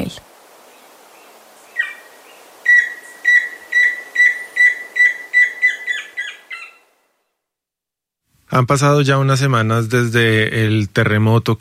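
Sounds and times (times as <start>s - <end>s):
tororoy chusquero antpitta singing whistled notes: 1.7s - 6.9s
speech: 8.6s - 11.5s.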